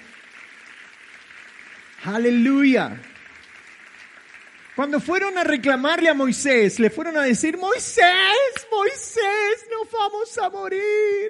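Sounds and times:
large indoor crowd applauding: 0.0s - 7.6s
speech: 2.0s - 3.1s, 4.8s - 11.2s.

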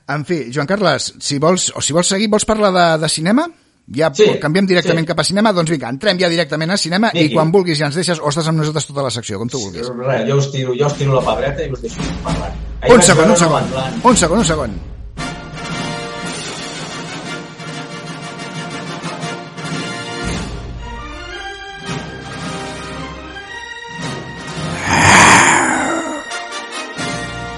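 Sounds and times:
speech: 0.1s - 15.0s
person doing dubbing-style voice work imitating a lion's roar: 24.8s - 26.3s.

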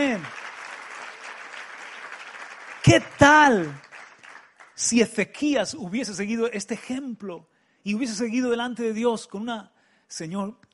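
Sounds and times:
audience applause: 0.0s - 4.9s
speech: 2.8s - 3.9s, 4.8s - 10.7s.

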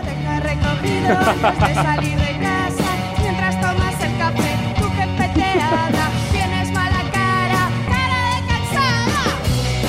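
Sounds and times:
pop song with singer and band: 0.0s - 9.8s
laughter: 0.8s - 2.4s, 5.2s - 6.2s
speech: 0.8s - 2.6s.

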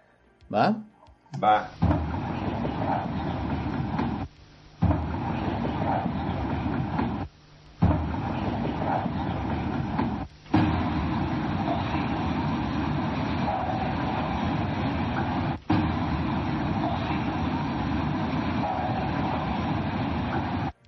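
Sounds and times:
crackly static-heavy hissing and rumbling noise of a psychophony recording: 0.0s - 20.8s
speech: 0.5s - 2.0s.

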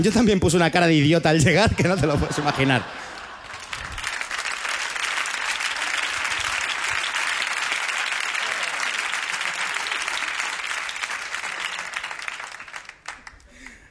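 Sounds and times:
speech: 0.0s - 3.1s
laughter: 1.6s - 4.3s, 8.3s - 10.6s
audience applause after a joke: 2.4s - 13.8s.

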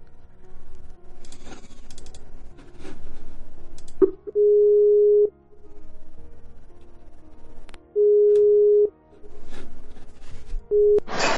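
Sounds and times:
clicks: 3.7s - 4.4s
phone ringing tone as a call is placed live on air: 4.0s - 5.3s, 8.0s - 8.9s.

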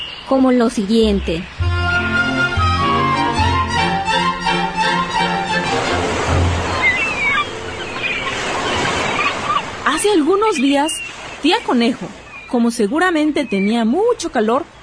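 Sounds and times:
speech: 0.3s - 1.6s, 10.0s - 14.7s
steady tonal music: 1.0s - 9.8s
surf of ocean waves breaking on a beach: 1.0s - 12.5s.

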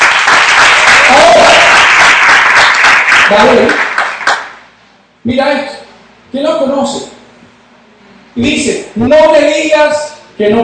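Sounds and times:
audience applause: 0.0s - 4.6s
speech: 3.3s - 3.9s, 5.2s - 5.7s, 6.3s - 7.1s, 8.4s - 10.6s.

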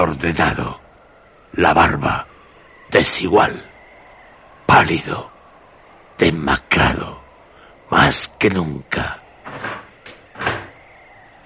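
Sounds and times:
speech: 0.0s - 0.8s, 1.6s - 2.3s, 2.9s - 3.7s, 4.7s - 5.3s, 6.2s - 7.2s, 7.9s - 9.8s
hatch in a heavy prison door scraping open: 9.4s - 10.9s.

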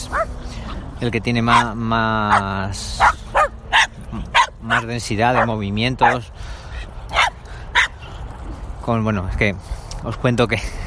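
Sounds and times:
dogs barking while playing: 0.0s - 0.4s, 1.4s - 6.3s, 7.1s - 8.0s
speech: 1.0s - 3.3s, 4.1s - 6.6s, 8.8s - 10.8s.

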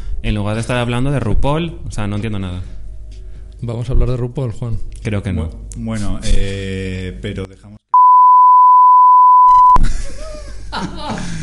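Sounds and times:
speech: 0.2s - 2.8s, 3.6s - 7.8s, 10.7s - 11.4s
censor beep over a spoken name: 8.0s - 9.8s.

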